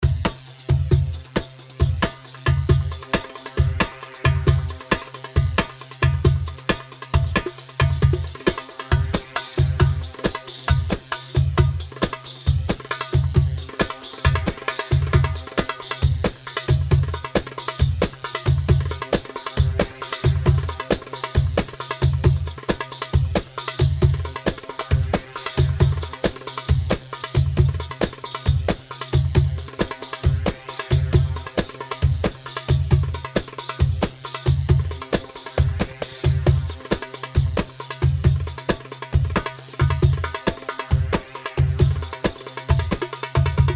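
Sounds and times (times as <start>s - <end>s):
Saiidi darbuka rhythm: 0.0s - 43.7s.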